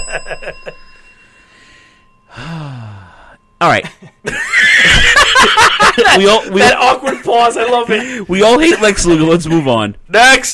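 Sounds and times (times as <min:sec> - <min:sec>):
small bell ringing: 0:00.0 - 0:06.6
loud breathy vocal sound: 0:01.4 - 0:03.4
speech: 0:03.6 - 0:04.4, 0:06.0 - 0:10.5
laughter: 0:03.8 - 0:08.2.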